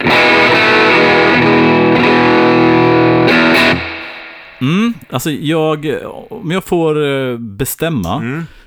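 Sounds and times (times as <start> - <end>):
electric guitar through a distortion pedal with tone control off playing sustained chords: 0.0 - 5.0
speech: 4.6 - 8.6.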